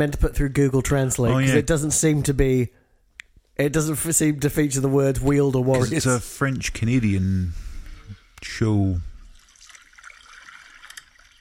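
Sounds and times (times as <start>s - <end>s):
speech: 0.0s - 2.8s, 3.6s - 7.7s, 8.4s - 9.1s
water-sound phone app reminder notification: 8.4s - 11.4s.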